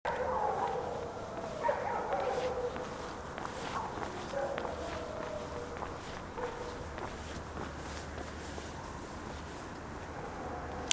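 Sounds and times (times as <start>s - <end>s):
several dogs howling: 0.1s - 7.0s
steady background noise: 0.1s - 10.9s.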